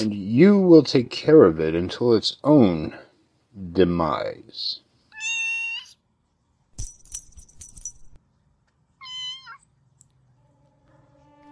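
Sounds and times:
speech: 0.0 - 3.0, 3.6 - 4.8
kitten meowing: 5.1 - 6.0, 9.0 - 9.7
metallic jingling: 6.7 - 8.2.

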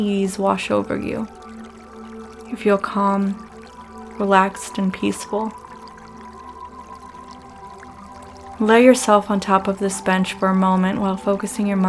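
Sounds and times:
speech: 0.0 - 1.5, 2.5 - 3.4, 4.2 - 5.6, 8.6 - 11.8
water fountain gurgling: 0.0 - 11.8.

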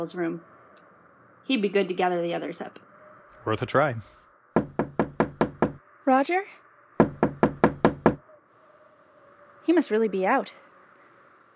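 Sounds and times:
speech: 0.0 - 0.5, 1.5 - 4.2, 6.1 - 6.6, 9.7 - 10.6
knocking on a room door: 4.6 - 5.8, 7.0 - 8.2.

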